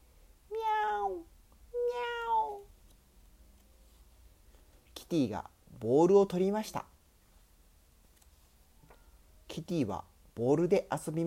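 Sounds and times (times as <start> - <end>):
faint low hum: 0.0 - 11.2
kitten meowing: 0.5 - 1.2, 1.8 - 2.7
speech: 5.0 - 6.9, 9.6 - 11.2.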